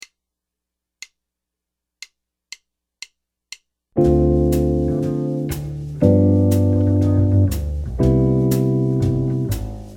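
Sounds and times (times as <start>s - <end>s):
jazz chord progression: 4.0s - 9.9s.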